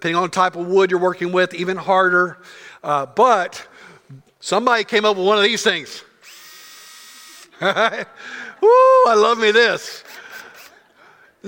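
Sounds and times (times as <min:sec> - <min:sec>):
speech: 0:00.0 - 0:06.1, 0:07.6 - 0:10.2
power drill whirring at a high pitch: 0:06.2 - 0:07.6, 0:09.9 - 0:10.9
laughter: 0:07.5 - 0:09.1, 0:10.1 - 0:11.4.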